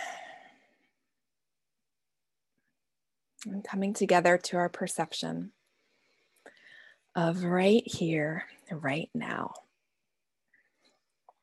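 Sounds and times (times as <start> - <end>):
deep breath sighing out during a guided relaxation exercise: 0.0 - 0.7
speech: 3.4 - 5.6, 7.2 - 9.6.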